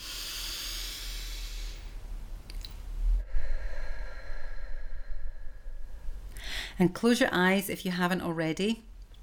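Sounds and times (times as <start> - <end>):
slow deep breathing in and out close to the microphone: 0.0 - 2.0, 3.2 - 6.8
steady low hum: 0.0 - 6.9
speech: 6.8 - 8.9.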